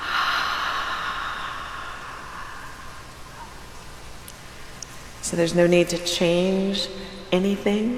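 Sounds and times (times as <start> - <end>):
slow breath in through nose and out through mouth: 0.0 - 5.2
speech: 5.3 - 7.9.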